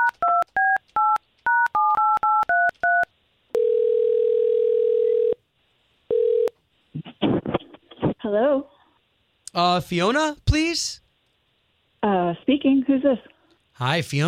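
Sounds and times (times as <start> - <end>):
touch-tone beeps of a telephone number dialed on a keypad: 0.0 - 3.1
telephone ringing tone: 0.0 - 5.4, 6.1 - 6.6
speech: 8.3 - 8.7, 9.6 - 11.0, 12.0 - 14.2.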